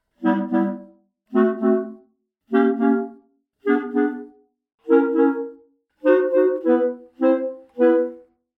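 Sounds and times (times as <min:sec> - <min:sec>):
clarinets playing: 0:00.2 - 0:04.3, 0:04.9 - 0:08.2.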